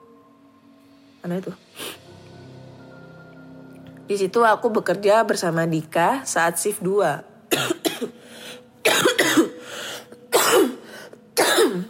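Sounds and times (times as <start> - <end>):
speech: 1.2 - 2.0, 4.1 - 8.2
person coughing harshly: 7.5 - 8.2, 8.9 - 9.6, 10.3 - 11.8.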